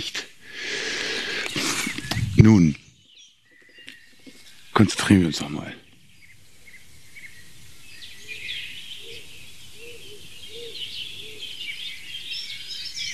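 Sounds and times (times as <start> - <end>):
speech: 0.0 - 0.2, 2.4 - 2.9, 4.8 - 5.8
higher twittering birdsong: 0.0 - 13.1
wild dove cooing: 8.3 - 11.6.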